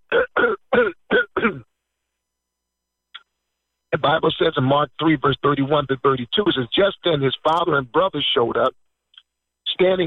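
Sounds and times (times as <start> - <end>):
person clearing throat: 0.1 - 1.7
speech: 4.0 - 8.8, 9.8 - 10.0.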